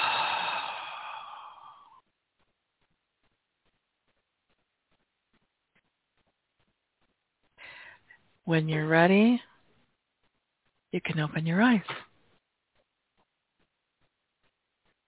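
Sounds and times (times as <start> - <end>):
deep exhale during a guided breathing exercise: 0.0 - 2.0
speech: 8.5 - 9.5, 10.9 - 12.1.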